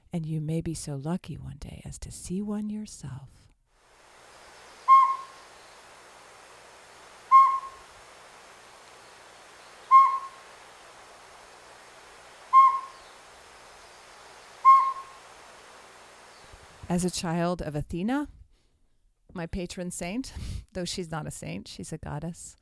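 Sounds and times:
faint hiss: 0.0 - 22.6
speech: 0.1 - 3.5, 16.9 - 18.4, 19.3 - 22.6
northern pygmy owl hooting: 4.8 - 5.8, 7.3 - 7.9, 9.6 - 11.0, 12.3 - 15.4.

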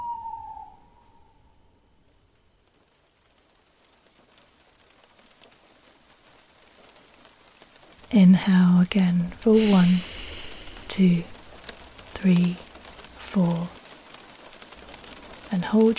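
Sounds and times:
owl hooting: 0.0 - 1.4
soft steady patter of rain: 1.7 - 15.9
speech: 8.1 - 10.1, 11.0 - 11.3, 12.2 - 12.6, 13.3 - 13.8, 15.5 - 15.9.

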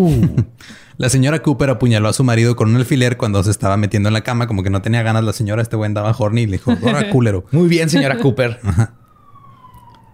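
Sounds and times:
speech: 0.0 - 9.0
laughter: 6.6 - 7.2, 7.9 - 8.9
ambulance siren wailing in a long tone dropping in pitch: 7.9 - 10.1.

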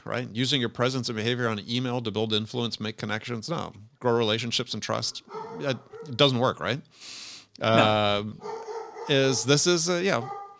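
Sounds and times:
speech: 0.0 - 10.4
dog in San Diego barking: 5.2 - 6.3, 8.4 - 10.5.

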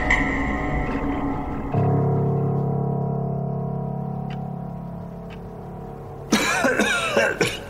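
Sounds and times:
low steady droning tone: 0.0 - 6.5
violent uncontrollable hacking coughing: 6.3 - 7.6.

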